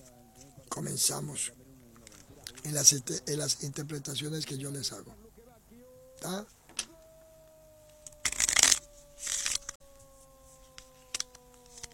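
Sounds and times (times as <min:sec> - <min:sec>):
speech: 0:00.8 - 0:01.6, 0:02.6 - 0:05.2, 0:06.2 - 0:06.6
deck of cards being shuffled: 0:08.1 - 0:09.8.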